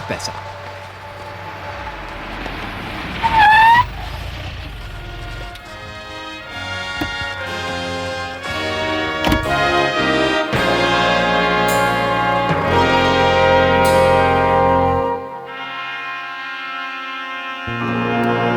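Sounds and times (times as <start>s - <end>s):
police patrol car approaching and pulling up: 0.0s - 15.7s
sustained tonal drone: 0.0s - 15.9s
speech: 0.1s - 0.6s
rising police siren whoop: 0.9s - 5.9s.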